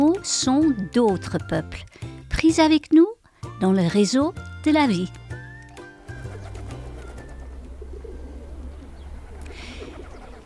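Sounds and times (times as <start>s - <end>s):
speech: 0.2s - 5.2s
soft flutter of pigeon wings: 5.7s - 10.4s
deep throaty pigeon cooing: 5.9s - 10.4s.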